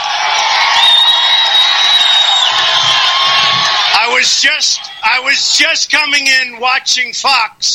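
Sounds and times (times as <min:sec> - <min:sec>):
large rally crowd roaring and cheering: 0:00.0 - 0:05.7
shrill whistles: 0:00.4 - 0:05.0
speech: 0:04.2 - 0:07.7.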